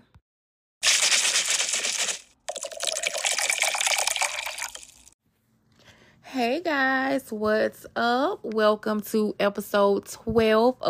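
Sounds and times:
cocktail strained and poured into a glass: 0.8 - 5.2
speech: 6.4 - 10.8.

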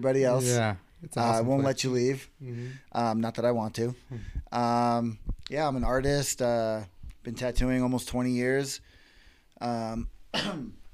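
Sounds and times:
speech: 0.0 - 8.9, 9.6 - 10.8
person coughing: 10.3 - 10.8.

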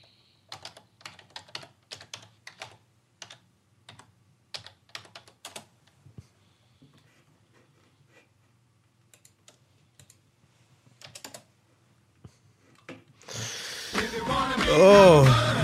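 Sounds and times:
typing on a computer keyboard: 0.5 - 5.7, 9.1 - 10.2, 11.0 - 11.5
speech: 14.6 - 15.5.

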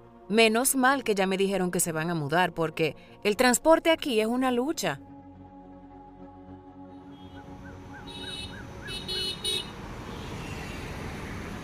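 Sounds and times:
speech: 0.3 - 5.1
car horns honking: 7.0 - 11.0
busy street traffic rumbling: 7.0 - 11.6.

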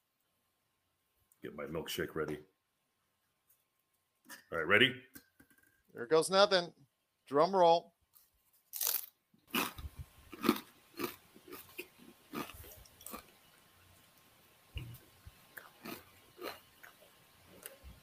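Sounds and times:
speech: 1.4 - 2.5, 4.3 - 5.2, 6.0 - 7.9
crunching a spicy tortilla chip: 8.6 - 13.3.

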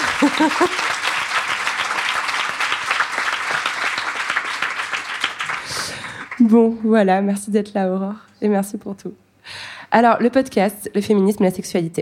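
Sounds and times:
laughter: 0.0 - 1.0
audience applause: 0.0 - 6.5
speech: 0.2 - 1.0, 6.4 - 9.2, 9.9 - 12.0.

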